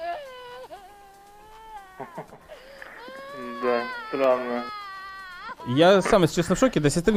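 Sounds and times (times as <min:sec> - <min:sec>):
teenage girl crying hysterically: 0:00.0 - 0:05.8
speech: 0:02.0 - 0:02.7, 0:03.4 - 0:04.8, 0:05.6 - 0:07.1.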